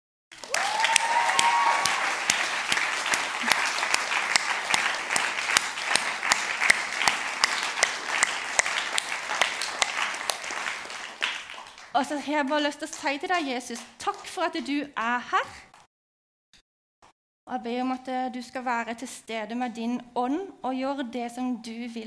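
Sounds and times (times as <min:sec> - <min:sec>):
audience applause: 0:00.4 - 0:11.9
audience cheer or whoop: 0:00.4 - 0:11.9
speech: 0:12.0 - 0:15.7, 0:17.5 - 0:22.0.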